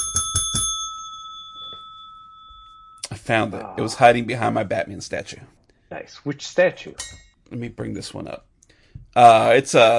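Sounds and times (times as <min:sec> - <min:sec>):
bell struck and ringing: 0:00.0 - 0:03.1
speech: 0:03.3 - 0:08.5, 0:09.2 - 0:09.9.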